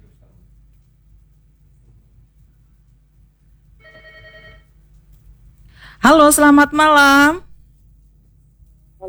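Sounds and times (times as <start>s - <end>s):
telephone ringing for an incoming listener call to a radio call-in program: 3.8s - 4.7s
speech: 6.0s - 7.4s.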